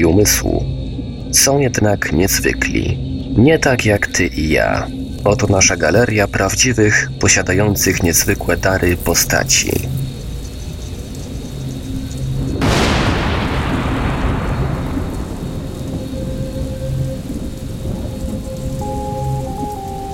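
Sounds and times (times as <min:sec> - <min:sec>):
steady rain: 0:00.0 - 0:20.1
speech: 0:00.1 - 0:00.7, 0:01.3 - 0:09.9
thunder crack: 0:12.0 - 0:20.1.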